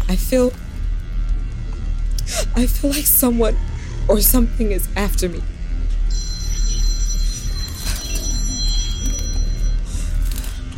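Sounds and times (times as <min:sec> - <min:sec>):
steady low rumble: 0:00.0 - 0:10.7
speech: 0:00.1 - 0:00.7, 0:02.3 - 0:05.6
telephone ringing with high thin electronic tones: 0:06.1 - 0:10.7.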